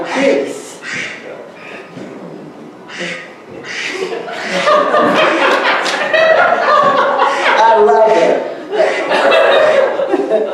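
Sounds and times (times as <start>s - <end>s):
ducks quacking: 0.0s - 2.0s, 2.8s - 10.2s
speech: 0.2s - 1.0s
laughter: 3.6s - 10.5s.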